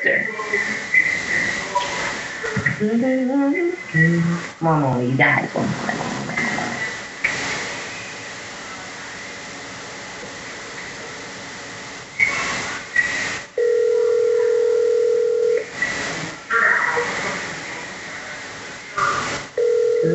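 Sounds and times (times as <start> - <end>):
faint phone line hiss: 0.2 - 20.1
speech: 2.8 - 6.0
outgoing phone call ringback tone: 13.6 - 15.7, 19.6 - 20.1.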